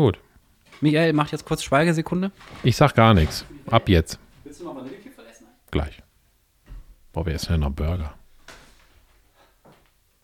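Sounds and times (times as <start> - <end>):
speech: 0.0 - 0.2, 0.8 - 5.0, 5.7 - 6.0, 7.2 - 8.2
wooden door pushed shut with soft knocks and clicks: 0.6 - 5.2, 8.1 - 9.2.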